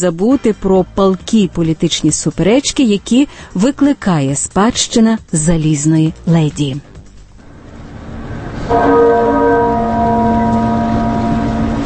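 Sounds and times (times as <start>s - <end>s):
speech: 0.0s - 6.9s, 8.7s - 9.6s
muffled church bell tolling at funeral: 8.7s - 11.8s.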